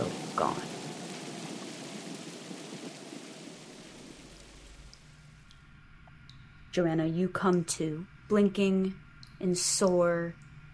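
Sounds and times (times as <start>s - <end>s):
heavy steady rain: 0.0s - 5.2s
speech: 6.8s - 10.5s.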